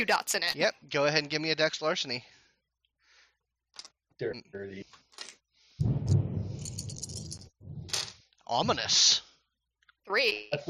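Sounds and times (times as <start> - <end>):
speech: 0.0 - 2.4, 3.8 - 6.2, 8.5 - 9.2, 10.1 - 10.6
thunder rumbling in a thunderstorm: 5.8 - 8.0.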